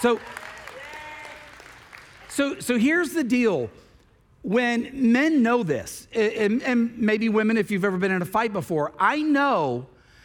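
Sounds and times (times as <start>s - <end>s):
speech: 0.0s - 0.5s, 2.4s - 3.8s, 4.4s - 9.9s
audience applause: 0.0s - 2.3s.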